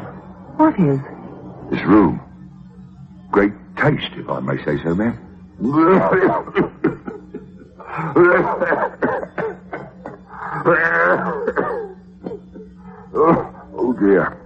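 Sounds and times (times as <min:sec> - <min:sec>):
speech: 0:00.6 - 0:02.2, 0:03.3 - 0:07.0, 0:08.0 - 0:09.1, 0:10.6 - 0:11.8, 0:13.2 - 0:14.4
laughter: 0:05.6 - 0:13.8
wet liquid-sounding cough with gurgling throaty bursts: 0:08.7 - 0:10.5, 0:11.2 - 0:12.6.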